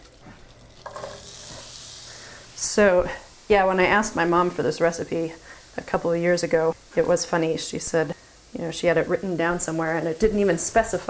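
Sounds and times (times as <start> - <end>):
onions sizzling in melted butter in a skillet: 0.0 - 11.0
stirring scrape: 0.1 - 2.2
speech: 2.8 - 11.0.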